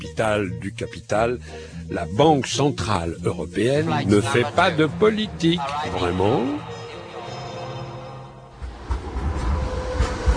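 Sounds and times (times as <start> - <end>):
speech: 0.1 - 6.8
low rumbling train noise leaving Frankfurt railway station: 8.5 - 10.3.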